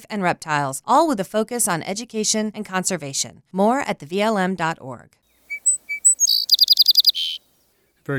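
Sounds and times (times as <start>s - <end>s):
speech: 0.0s - 5.2s
seaside sparrow singing: 5.4s - 7.6s.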